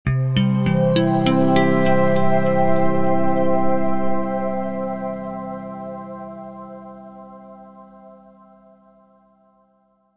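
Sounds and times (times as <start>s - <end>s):
ascending plucked corporate multimedia musical ident: 0.1s - 5.9s.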